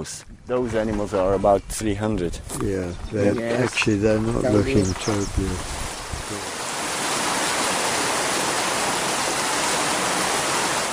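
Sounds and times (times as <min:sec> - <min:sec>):
speech: 0:00.0 - 0:06.5
heavy rain pouring down: 0:04.8 - 0:10.9.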